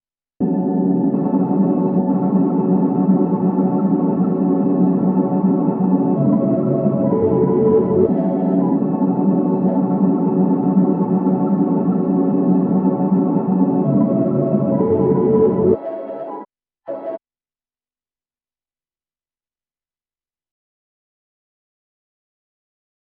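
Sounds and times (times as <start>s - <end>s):
icy drone with delay effect: 0.4s - 16.4s.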